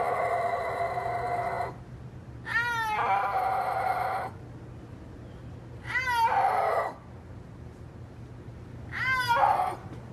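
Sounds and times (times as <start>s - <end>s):
snow leopard yowling: 0.0s - 1.8s, 2.5s - 4.4s, 5.8s - 7.0s, 8.9s - 9.9s.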